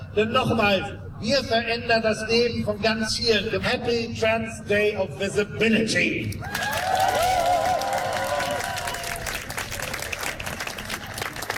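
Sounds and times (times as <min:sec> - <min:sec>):
speech: 0:00.2 - 0:07.1
audience whistles and cheers: 0:06.4 - 0:09.5
audience applause at a Trans Day of Visibility event: 0:06.5 - 0:11.5.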